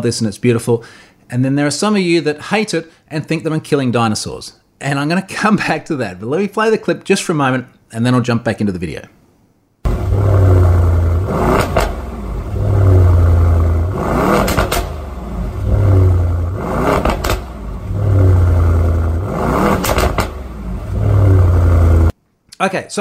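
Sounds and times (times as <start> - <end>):
speech: 0.0 - 9.2, 22.6 - 23.0
gasoline car engine revving over a deep idle: 9.9 - 22.1.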